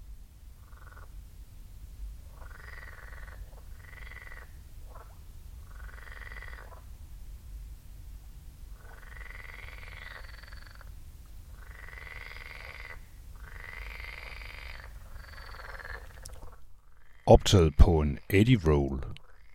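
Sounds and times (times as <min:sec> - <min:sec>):
chorus of frogs croaking by a lake: 0:00.6 - 0:01.1, 0:02.3 - 0:06.9, 0:08.8 - 0:10.9, 0:11.5 - 0:17.2
speech: 0:17.3 - 0:19.2.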